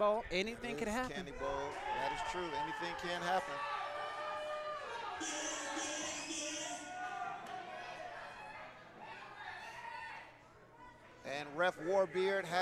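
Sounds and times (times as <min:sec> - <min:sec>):
speech: 0:00.0 - 0:03.8, 0:05.2 - 0:05.4, 0:11.3 - 0:12.6
large crowd at a wrestling match chanting a jeering taunt: 0:01.6 - 0:09.4.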